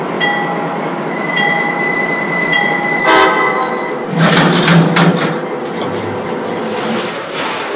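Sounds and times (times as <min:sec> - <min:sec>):
passenger train rumbling into a station: 0:00.0 - 0:07.7
passenger train wheels squealing: 0:01.1 - 0:04.1.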